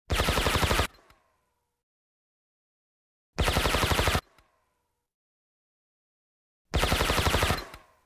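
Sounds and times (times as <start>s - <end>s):
automatic gunfire burst with a silencer: 0.1s - 0.9s, 3.4s - 4.2s, 6.8s - 7.7s.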